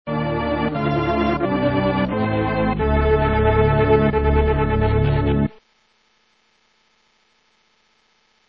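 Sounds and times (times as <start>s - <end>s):
loading music: 0.1s - 5.6s.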